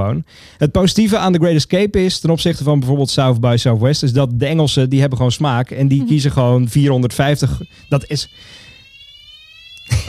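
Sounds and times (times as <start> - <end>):
speech: 0.0 - 8.7, 9.9 - 10.0
fire alarm steady high electronic tone: 6.0 - 10.0.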